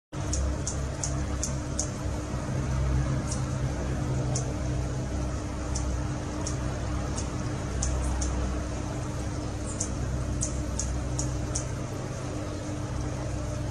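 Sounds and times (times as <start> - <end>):
green scissor-tailed hummingbird singing: 0.2 - 13.6.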